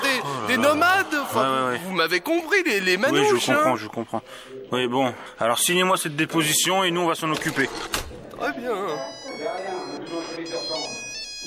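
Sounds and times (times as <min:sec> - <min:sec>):
speech: 0:00.5 - 0:09.7
mobile phone ringtone: 0:08.4 - 0:11.4.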